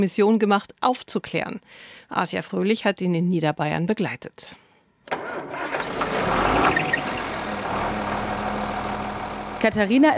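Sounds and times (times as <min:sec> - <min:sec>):
speech: 0:00.0 - 0:05.6, 0:09.6 - 0:10.1
tractor engine starting and idling: 0:05.2 - 0:10.1.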